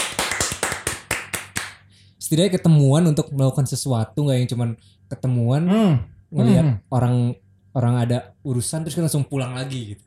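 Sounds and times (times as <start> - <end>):
hands clapping: 0.0 - 1.8
speech: 2.3 - 10.0.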